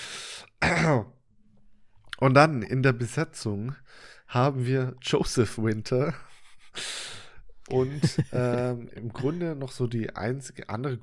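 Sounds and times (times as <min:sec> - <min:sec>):
throat-clearing like a stifled cough: 0:00.6 - 0:01.1
speech: 0:00.9 - 0:01.2, 0:02.2 - 0:07.0, 0:07.7 - 0:11.0
laughter: 0:07.7 - 0:09.5.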